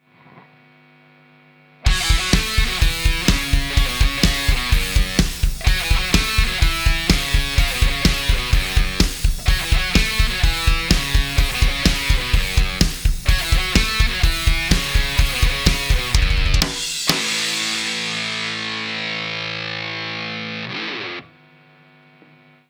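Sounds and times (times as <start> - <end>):
Stratocaster electric guitar: 1.8 - 22.6.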